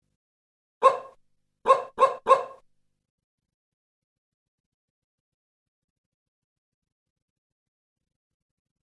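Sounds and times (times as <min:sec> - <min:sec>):
dog barking: 0:00.8 - 0:02.6.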